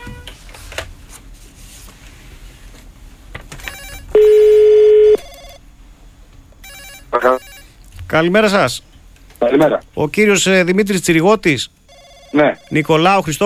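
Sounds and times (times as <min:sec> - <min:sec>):
telephone ring tone on outgoing call: 0:03.6 - 0:05.6, 0:06.6 - 0:07.8, 0:11.9 - 0:13.1
speech: 0:08.1 - 0:13.4.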